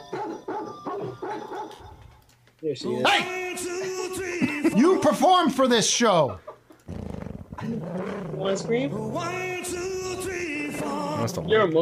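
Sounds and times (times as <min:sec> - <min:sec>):
dog barking and yipping: 0:00.1 - 0:02.0
speech: 0:02.6 - 0:06.5, 0:07.7 - 0:10.0, 0:11.2 - 0:11.7.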